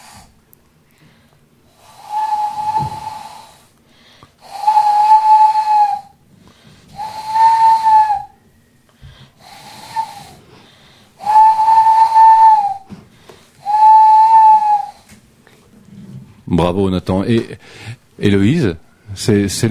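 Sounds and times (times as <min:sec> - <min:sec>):
child imitating an owl call with breathy hooting whistles: 0:02.0 - 0:03.4, 0:04.5 - 0:06.1, 0:11.2 - 0:12.9, 0:13.6 - 0:15.0
speech: 0:16.7 - 0:19.6.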